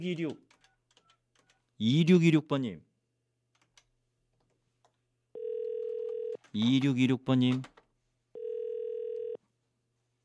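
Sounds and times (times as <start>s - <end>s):
speech: 0.0s - 0.5s, 1.8s - 2.9s, 6.5s - 7.7s
telephone ringback tone while call connects: 5.4s - 6.4s, 8.4s - 9.4s.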